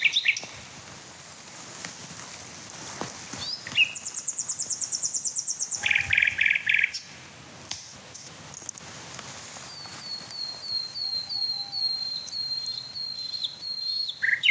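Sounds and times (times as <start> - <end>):
male Common Nightingale singing in fields with trees: 0.0 - 0.5, 3.4 - 7.1, 9.7 - 14.4
light background noise: 0.0 - 14.4.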